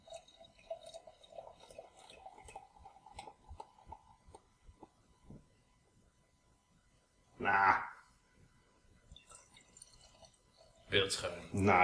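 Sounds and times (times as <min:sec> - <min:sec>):
beer being poured into a glass: 0:00.0 - 0:05.1, 0:09.1 - 0:11.8
speech: 0:07.4 - 0:07.9, 0:10.9 - 0:11.8.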